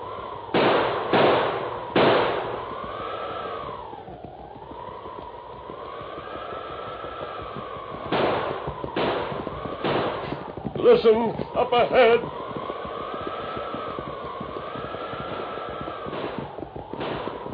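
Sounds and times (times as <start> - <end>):
steady wavering siren-like wind tone in a storm: 0.0 - 17.5
heavy six-gun revolver gunshots in a storm: 0.4 - 4.2, 8.0 - 17.5
speech: 10.9 - 12.4.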